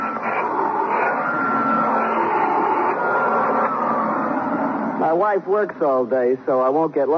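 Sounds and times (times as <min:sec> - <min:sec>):
vacuum cleaner vacuuming cat lint off a carpet in a home: 0:00.0 - 0:05.1
speech: 0:05.2 - 0:07.1.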